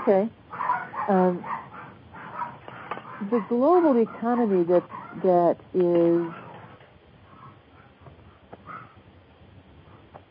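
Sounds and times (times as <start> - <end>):
speech: 0.0 - 0.4, 1.1 - 1.5, 3.2 - 6.4
dog barking: 0.5 - 5.2, 6.3 - 9.0.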